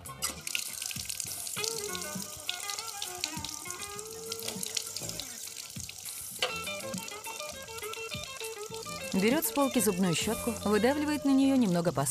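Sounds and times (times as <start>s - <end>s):
running water in a bathroom: 0.2s - 12.0s
person rinsing mouth with water in a bathroom: 0.3s - 9.7s
speech: 9.2s - 12.0s.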